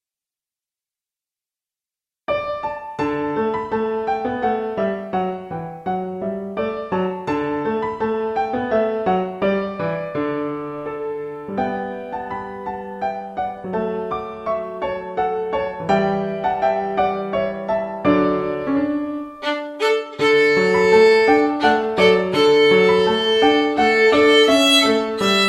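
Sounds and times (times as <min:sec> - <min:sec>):
piano: 0:02.3 - 0:25.4
violin: 0:18.3 - 0:25.4.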